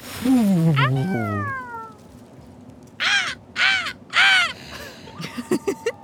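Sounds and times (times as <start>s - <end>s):
speech: 0.2s - 1.6s
loud harsh crow caws: 3.0s - 4.6s.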